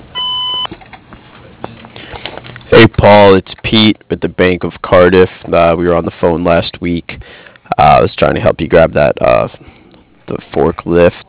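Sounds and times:
voicemail beep tone: 0:00.2 - 0:00.7
speech: 0:02.7 - 0:09.7, 0:10.3 - 0:11.2.

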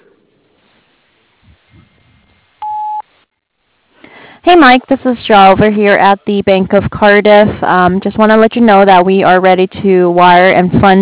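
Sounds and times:
voicemail electronic beep tone: 0:02.6 - 0:03.0
speech: 0:04.5 - 0:11.0.

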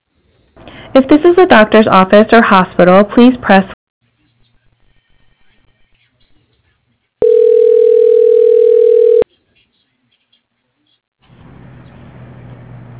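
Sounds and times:
speech: 0:01.0 - 0:03.8
telephone dial tone: 0:07.2 - 0:09.2.

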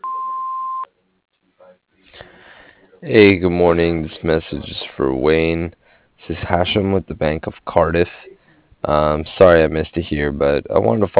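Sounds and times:
answering machine beep after a voicemail greeting: 0:00.0 - 0:00.9
speech: 0:03.0 - 0:11.1.

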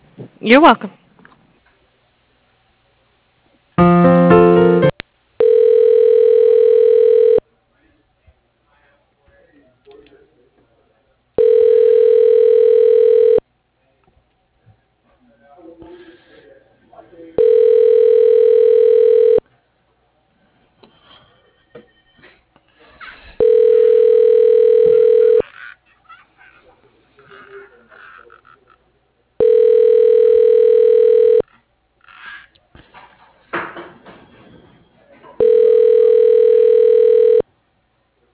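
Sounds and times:
speech: 0:00.4 - 0:01.0
telephone tones as a call is transferred to voicemail: 0:03.8 - 0:07.4, 0:11.4 - 0:13.4, 0:17.4 - 0:19.4, 0:23.4 - 0:25.4, 0:29.4 - 0:31.4, 0:35.4 - 0:37.4.

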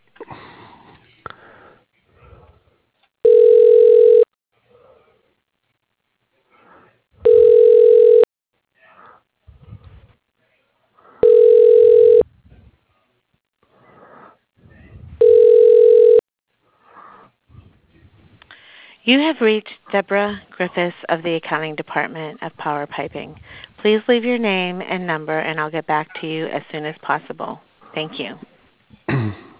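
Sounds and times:
person sniffing and breathing: 0:00.2 - 0:02.8, 0:13.7 - 0:15.2, 0:16.6 - 0:19.0
telephone ringback tone while an office extension is dialed: 0:03.2 - 0:04.3, 0:07.2 - 0:08.3, 0:11.2 - 0:12.2, 0:15.2 - 0:16.2
speech: 0:19.1 - 0:28.5.

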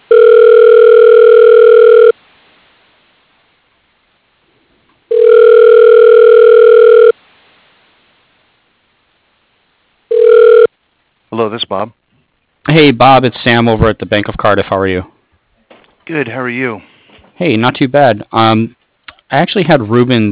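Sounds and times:
telephone dialing: 0:00.1 - 0:02.1, 0:05.1 - 0:07.1
telephone ringing tone: 0:00.1 - 0:02.2, 0:05.1 - 0:07.2, 0:10.1 - 0:10.7
speech: 0:11.7 - 0:12.0, 0:12.8 - 0:15.2, 0:16.1 - 0:20.3.

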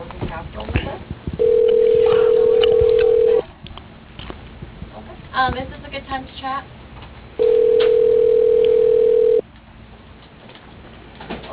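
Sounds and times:
telephone keypad DTMF tone entered on a dial pad over a phone line: 0:01.4 - 0:03.4, 0:07.4 - 0:09.4
speech: 0:05.4 - 0:06.8.

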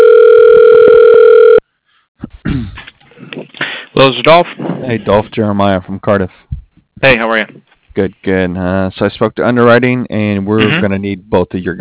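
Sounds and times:
steady telephone tone on a business phone line after dialing an extension: 0:00.0 - 0:01.6
speech: 0:04.0 - 0:06.4, 0:07.0 - 0:11.8.

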